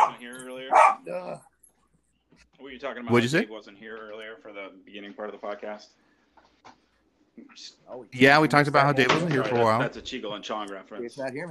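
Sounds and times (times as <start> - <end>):
high-pitched dog barks and yaps: 0.0 - 1.0
speech: 2.8 - 6.0, 7.4 - 11.5.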